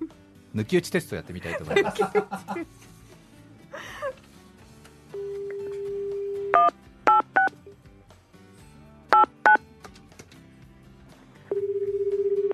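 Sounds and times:
speech: 0.5 - 2.9
laughter: 1.4 - 2.9
telephone dial tone: 5.1 - 7.5, 11.5 - 12.5
touch-tone keypad beeps as a phone call is placed: 6.6 - 7.5, 9.2 - 9.6.

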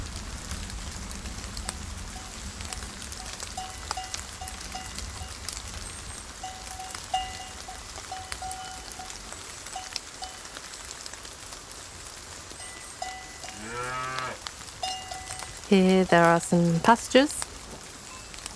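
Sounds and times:
steady rain over a foggy pasture: 0.0 - 18.5
cow mooing in a rainy pasture: 13.4 - 14.4
speech: 15.7 - 17.4.

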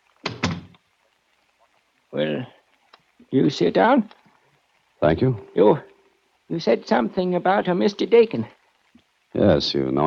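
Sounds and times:
door swinging shut with latch knock: 0.2 - 0.8
door rattle: 0.3 - 0.8
speech: 2.1 - 2.6, 3.3 - 4.2, 5.0 - 5.9, 6.5 - 8.6, 9.4 - 10.0.

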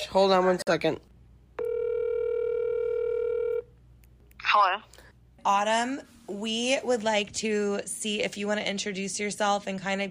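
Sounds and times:
speech: 0.0 - 1.1, 4.5 - 10.0
FaceTime video call connecting ring tone: 1.6 - 3.7.

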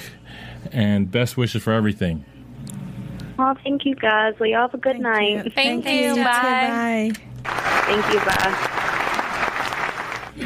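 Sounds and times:
speech: 0.7 - 2.3, 3.5 - 7.3, 7.9 - 8.7
applause from a small group: 7.4 - 10.4.

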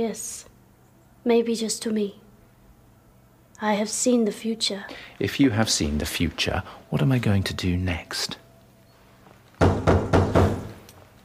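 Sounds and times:
speech: 0.0 - 0.5, 1.2 - 2.2, 3.6 - 8.4
firm knocking on a wooden door: 9.6 - 10.8.

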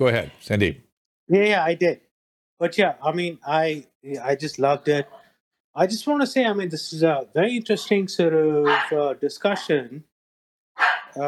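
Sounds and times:
speech: 0.0 - 2.0, 2.6 - 5.2, 5.8 - 10.1
dog barking in the background: 8.6 - 9.0, 10.8 - 11.2.

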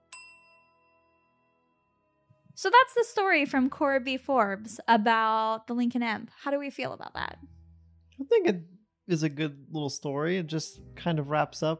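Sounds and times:
luncheon bell ringing with a bright metallic tone: 0.0 - 1.4
speech: 2.6 - 7.6, 8.2 - 11.7.

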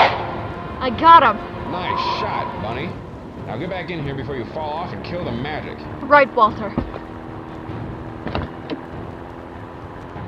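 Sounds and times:
moving car rumble with road and engine noise: 0.0 - 10.2
speech: 0.8 - 7.0
sharp knocks: 8.2 - 8.8.

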